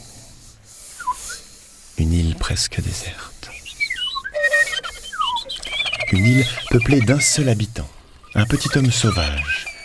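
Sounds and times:
soft breathy hiss: 0.0s - 4.0s
audience members whistling birdlike calls imitating birds on an island: 0.8s - 1.6s, 3.5s - 9.8s
speech: 2.0s - 3.3s, 6.1s - 9.7s.

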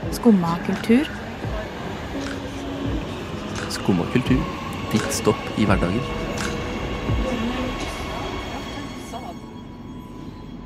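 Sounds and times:
train pulling into a station: 0.0s - 10.6s
speech: 0.1s - 1.2s, 3.9s - 6.2s.

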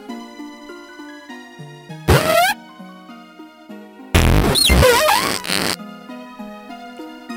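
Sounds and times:
raspy cries of a skunk-like video game creature: 2.1s - 2.6s, 4.2s - 5.8s
soft steady electronic music: 2.1s - 2.6s, 4.2s - 5.8s.

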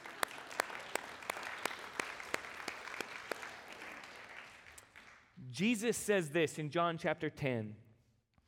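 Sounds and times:
crowd applauding: 0.0s - 5.3s
sharp claps: 0.0s - 5.3s
speech: 5.6s - 7.8s.

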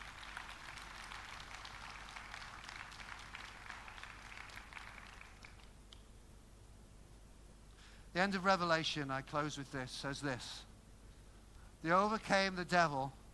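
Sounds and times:
crowd applauding a drama team: 0.0s - 5.7s
speech: 8.2s - 10.7s, 11.8s - 13.2s.

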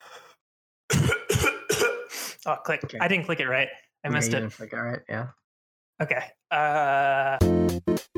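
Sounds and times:
harsh coughs: 0.9s - 2.2s
speech: 2.4s - 5.4s, 6.0s - 8.0s.

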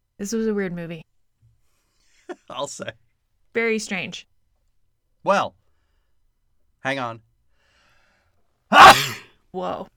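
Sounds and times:
speech: 0.2s - 1.1s, 2.5s - 3.0s, 3.6s - 4.3s, 5.2s - 5.6s, 6.8s - 7.3s, 8.7s - 9.9s
loud sneeze: 8.7s - 9.3s.

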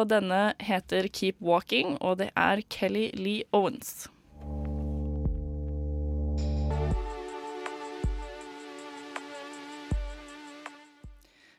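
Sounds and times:
speech: 0.0s - 4.1s
deep sustained synth drone: 4.3s - 7.4s
bright layered synth pad: 4.3s - 10.8s
slow bass drum thumps: 4.4s - 5.9s, 6.7s - 7.2s, 8.0s - 8.4s.

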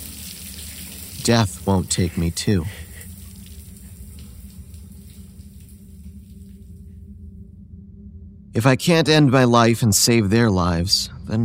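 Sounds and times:
water running from a tap while rinsing a razor: 0.0s - 6.6s
speech: 1.2s - 2.9s, 8.6s - 11.4s.

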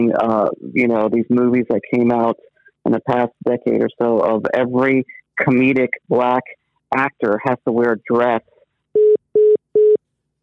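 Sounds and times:
speech: 0.0s - 8.5s
phone line beeps after a dropped call: 9.0s - 10.0s.

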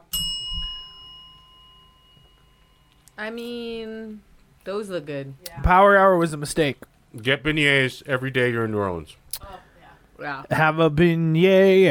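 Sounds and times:
bell ringing: 0.0s - 3.6s
speech: 3.2s - 9.6s, 10.2s - 11.8s.

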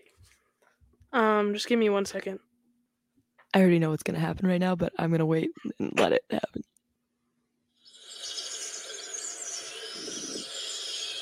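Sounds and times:
speech: 1.1s - 2.5s, 3.6s - 6.7s
chorus of birds chirping and twittering: 7.9s - 11.1s.

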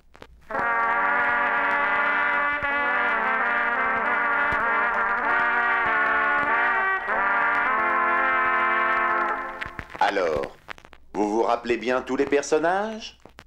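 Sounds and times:
three French horns playing a dark sombre theme in harmony: 0.5s - 10.0s
speech: 11.6s - 13.2s.

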